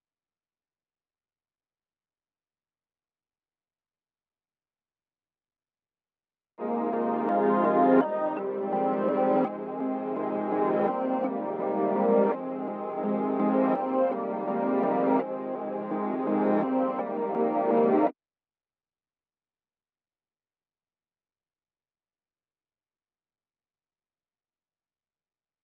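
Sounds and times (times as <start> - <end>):
reversed gloss synth pad melody at 167 BPM in F minor: 6.6 - 18.1.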